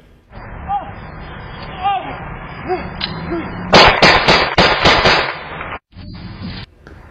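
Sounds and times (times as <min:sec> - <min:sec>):
people talking: 0:01.7 - 0:03.5
gunshots captured by a home security camera at night: 0:03.7 - 0:05.8.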